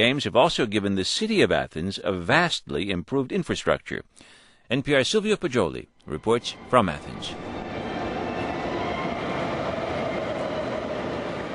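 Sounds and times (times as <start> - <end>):
speech: 0.0 - 7.5
subway train rumbling in a metro station: 6.1 - 11.5.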